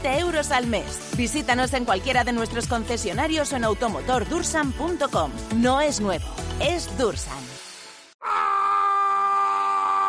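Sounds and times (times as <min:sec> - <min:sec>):
speech: 0:00.0 - 0:07.5
loud sustained high-pitched scream: 0:08.2 - 0:10.0.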